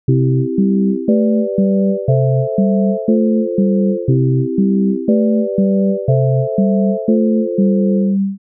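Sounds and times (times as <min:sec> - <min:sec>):
synthesizer: 0:00.1 - 0:08.4.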